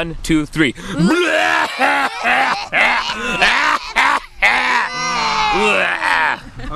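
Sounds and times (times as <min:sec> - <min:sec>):
speech: 0:00.0 - 0:03.8, 0:05.6 - 0:06.0
several people loudly imitating a hacking death cough: 0:01.0 - 0:06.4
laughter: 0:01.0 - 0:06.7.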